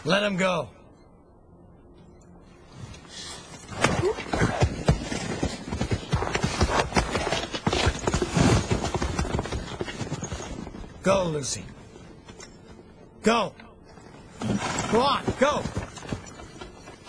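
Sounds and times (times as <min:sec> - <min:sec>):
speech: 0:00.0 - 0:00.8, 0:11.0 - 0:11.7, 0:13.2 - 0:13.6, 0:14.4 - 0:15.8
horse hooves clip-clopping: 0:04.3 - 0:11.0, 0:14.4 - 0:17.0.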